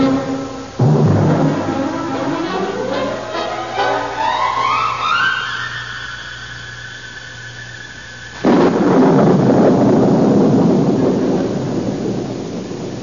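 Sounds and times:
rising whistling tone: 1.4s - 8.4s
steady pouring rain: 7.0s - 13.0s
heavy rumbling thunder: 8.4s - 13.0s.

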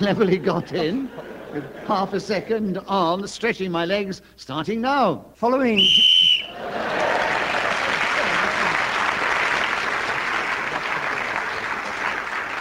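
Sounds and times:
laughter: 0.0s - 2.6s, 6.5s - 12.5s
speech: 0.0s - 7.1s
referee's whistle blast ending a game round: 5.8s - 6.5s
enthusiastic applause from a sizeable audience: 6.5s - 12.5s.

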